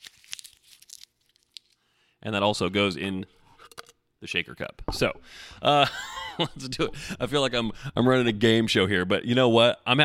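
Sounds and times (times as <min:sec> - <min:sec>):
small sticky-note paper being crumpled: 0:00.0 - 0:01.8
speech: 0:02.2 - 0:03.4, 0:04.2 - 0:10.0.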